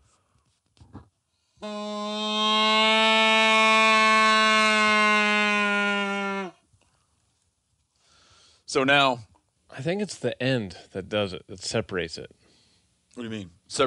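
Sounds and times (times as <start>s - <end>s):
speech: 1.6s - 2.4s, 8.7s - 12.4s, 13.2s - 13.8s
factory-made cow call blown: 1.6s - 6.6s.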